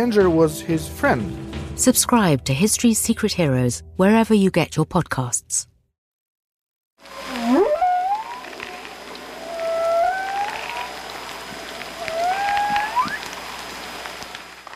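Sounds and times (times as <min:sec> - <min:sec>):
speech: 0:00.0 - 0:05.7
whale song underwater: 0:07.0 - 0:13.8
hissing underwater backdrop: 0:07.0 - 0:14.6.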